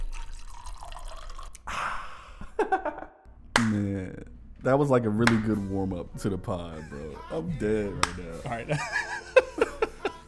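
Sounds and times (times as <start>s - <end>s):
liquid pouring into a glass: 0.0s - 1.7s
speech: 2.6s - 9.1s
laughter: 8.4s - 10.2s.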